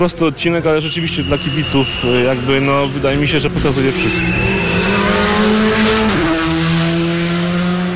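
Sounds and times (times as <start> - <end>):
speech: 0.0 - 5.6
rally car engine at full throttle after a corner: 0.0 - 7.9.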